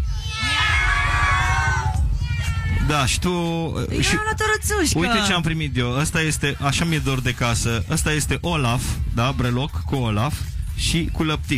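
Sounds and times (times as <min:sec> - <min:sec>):
crowd of voices including children imitating a cat meow: 0:00.0 - 0:02.8
speech: 0:02.9 - 0:11.5.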